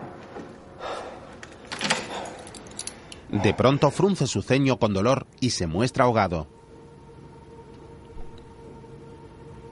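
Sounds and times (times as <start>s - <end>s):
keys jangling: 1.4s - 3.2s
speech: 3.3s - 6.6s.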